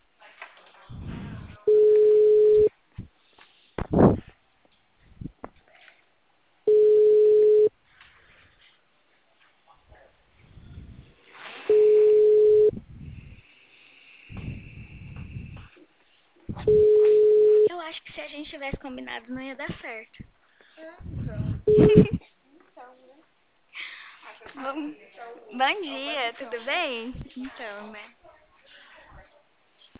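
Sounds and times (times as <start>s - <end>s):
low-pitched telephone ringback tone for an outgoing call: 1.7s - 2.7s, 6.7s - 7.7s, 11.7s - 12.7s, 16.7s - 17.7s
speech: 18.9s - 22.2s, 25.6s - 28.2s.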